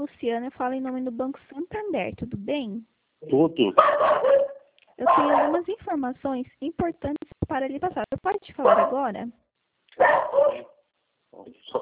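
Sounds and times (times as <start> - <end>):
speech: 0.0 - 9.4, 10.0 - 10.7, 11.4 - 11.8
dogs barking: 3.8 - 5.7, 8.6 - 9.1, 10.0 - 10.8.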